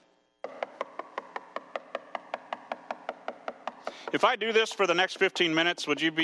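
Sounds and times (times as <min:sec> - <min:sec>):
knocking on a door: 0:00.4 - 0:05.0
speech: 0:04.1 - 0:06.2.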